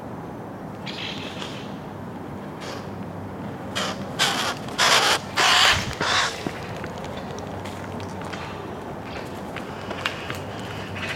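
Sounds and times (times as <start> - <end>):
Eurasian magpie Pica pica giving harsh rasping chatter calls: 0.8 - 1.8, 3.8 - 7.4, 9.1 - 11.1.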